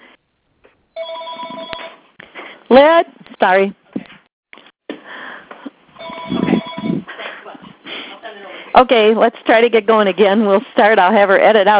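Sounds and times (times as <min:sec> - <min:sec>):
telephones ringing in a room where people gather to record: 0:01.0 - 0:02.0, 0:06.0 - 0:07.1
speech: 0:02.7 - 0:03.8, 0:08.8 - 0:11.7.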